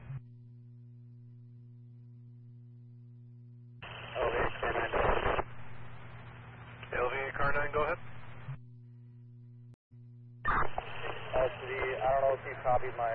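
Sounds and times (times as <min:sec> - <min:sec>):
steady electrical hum: 0:00.0 - 0:13.1
garbled voice over broken-up radio transmission: 0:03.8 - 0:05.4, 0:06.9 - 0:08.0, 0:10.5 - 0:13.1
hissing radio static: 0:03.8 - 0:08.4, 0:10.5 - 0:13.1.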